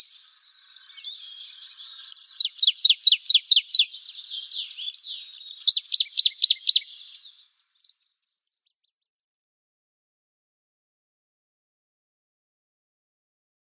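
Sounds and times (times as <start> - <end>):
dusky warbler singing: 0.0 - 8.9.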